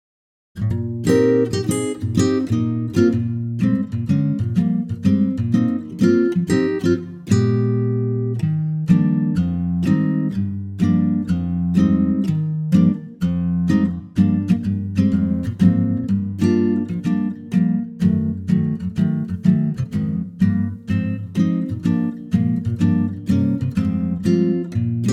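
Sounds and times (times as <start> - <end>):
acoustic guitar in E flat: 0.6 - 25.1.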